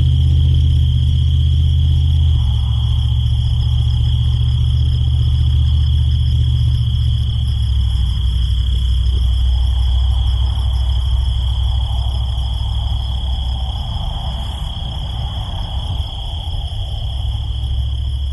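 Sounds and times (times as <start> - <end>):
crickets chirping in the desert: 0.0 - 18.3
low constant rumble: 0.0 - 18.3.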